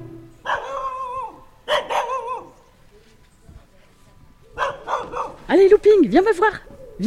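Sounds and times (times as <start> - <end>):
dog barking: 0.4 - 2.6, 4.5 - 5.5
speech: 6.1 - 7.0.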